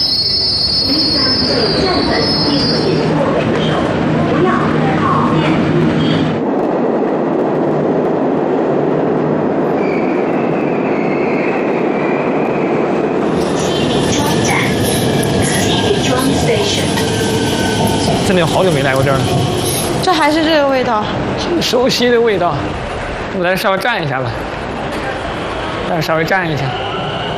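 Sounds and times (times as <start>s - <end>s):
subway train arriving at a metro station: 0.0s - 27.3s
speech: 1.5s - 3.0s, 20.2s - 24.4s, 25.9s - 26.8s.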